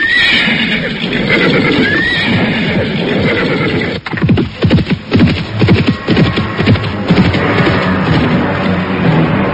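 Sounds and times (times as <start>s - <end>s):
horse whinnying: 0.0s - 4.1s
horse hooves clattering in a rapid gallop: 0.0s - 9.4s.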